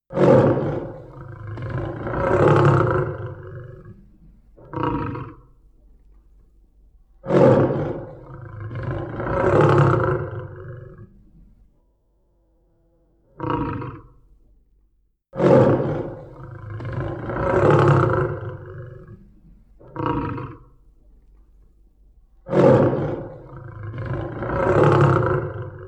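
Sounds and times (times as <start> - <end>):
lion roaring: 0.1 - 4.0, 4.6 - 5.4, 7.3 - 11.2, 13.4 - 14.1, 15.4 - 19.2, 19.8 - 20.8, 22.5 - 25.8.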